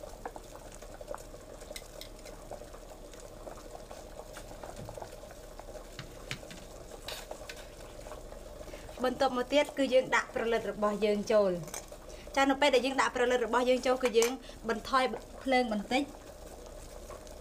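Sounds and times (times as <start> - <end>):
simmering dish with salt and soy sauce bubbling: 0.0 - 17.4
speech: 9.0 - 11.8, 12.4 - 16.2.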